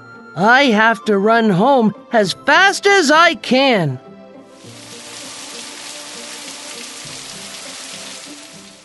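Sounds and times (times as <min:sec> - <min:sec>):
soft music: 0:00.0 - 0:08.8
speech: 0:00.4 - 0:04.1
heavy rain on a hard surface: 0:04.6 - 0:08.8.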